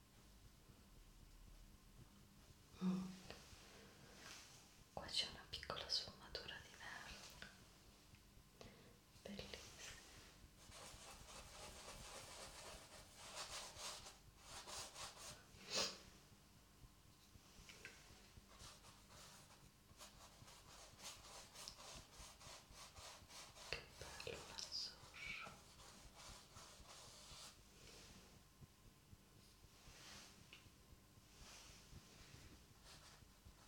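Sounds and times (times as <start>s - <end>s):
faint low hum: 0.0s - 33.6s
soft paintbrush strokes scratching and sweeping: 9.5s - 15.5s, 17.4s - 28.4s, 29.4s - 33.6s.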